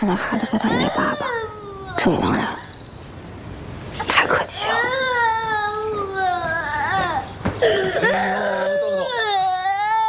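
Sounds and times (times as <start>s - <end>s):
speech: 0.0s - 2.6s
small child sobbing and wailing after being hurt in the face: 0.6s - 2.0s, 4.7s - 10.0s.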